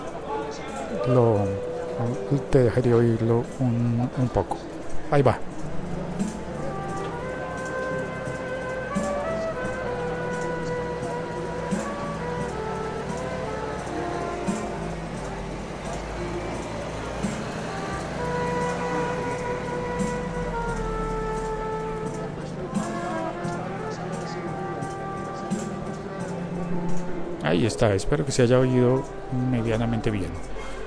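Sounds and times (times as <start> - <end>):
crowd ambience: 0.0 - 30.8
street noise: 0.0 - 30.8
speech: 0.6 - 5.6, 27.6 - 30.6
trumpet playing a melody outdoors on the street: 6.5 - 26.8.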